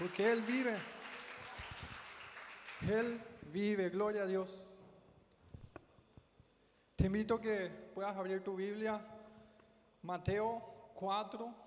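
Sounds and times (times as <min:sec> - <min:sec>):
speech: 0:00.0 - 0:01.0, 0:02.8 - 0:04.7, 0:07.0 - 0:09.1, 0:10.0 - 0:11.6
congregation clapping: 0:00.0 - 0:03.4.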